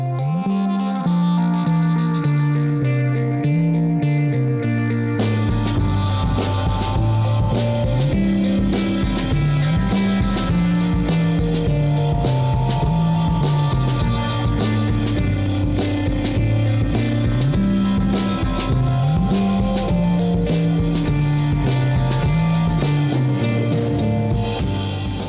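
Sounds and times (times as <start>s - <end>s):
bass-driven groove: 0.0s - 25.2s
lo-fi drums recorded in an open setting: 5.1s - 25.2s.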